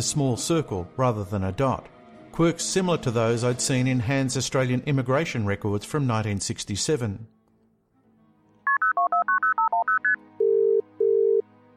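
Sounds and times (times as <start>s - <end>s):
speech: 0.0s - 7.4s
touch-tone phone number being dialed: 8.7s - 11.4s.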